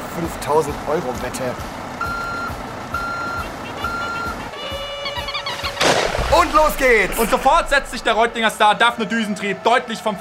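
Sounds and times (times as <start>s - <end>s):
loud rumbling truck diesel engine: 0.0s - 8.9s
speech: 0.2s - 1.8s, 6.4s - 10.2s
truck reversing alarm beeping: 2.0s - 4.4s.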